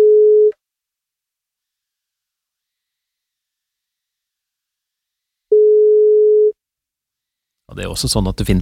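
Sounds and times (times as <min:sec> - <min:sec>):
ringback tone of an outgoing phone call: 0:00.0 - 0:00.5, 0:05.5 - 0:06.6
speech: 0:07.8 - 0:08.5.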